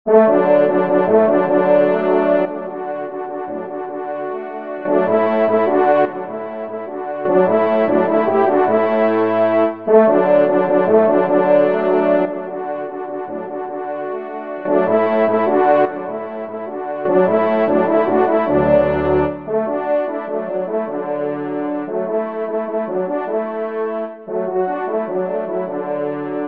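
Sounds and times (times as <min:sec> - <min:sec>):
horn ensemble playing a march in C major: 0:00.1 - 0:26.4.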